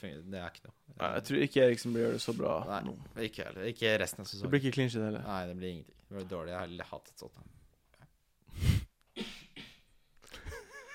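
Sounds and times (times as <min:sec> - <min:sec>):
speech: 0:00.0 - 0:07.6
person coughing: 0:09.1 - 0:09.9.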